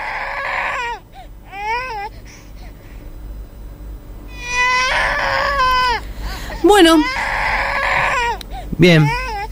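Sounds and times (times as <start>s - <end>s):
two-week-old baby crying: 0.0s - 2.1s, 4.3s - 9.4s
speech: 6.7s - 7.1s, 8.8s - 9.2s.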